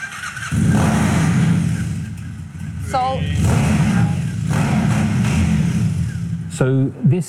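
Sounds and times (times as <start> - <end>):
small-CC motorcycle engine cranking, idling and revving: 0.0 - 6.9
speech: 2.9 - 3.5, 6.6 - 7.2.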